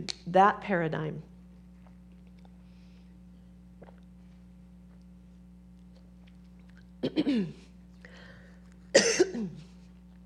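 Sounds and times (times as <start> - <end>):
speech: 0.0 - 1.3, 7.0 - 7.6
faint steady hum: 0.0 - 10.2
coughing and throat clearing: 7.0 - 7.7, 8.9 - 9.7.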